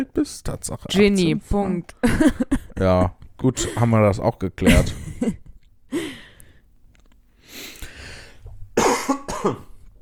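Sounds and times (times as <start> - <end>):
speech: 0.0 - 5.4, 9.4 - 9.7
harsh rasping coughs: 3.6 - 3.9, 8.8 - 9.8.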